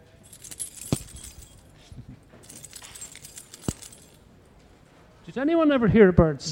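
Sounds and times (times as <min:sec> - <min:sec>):
bunch of keys jangling: 0:00.0 - 0:04.7
speech: 0:05.3 - 0:06.5.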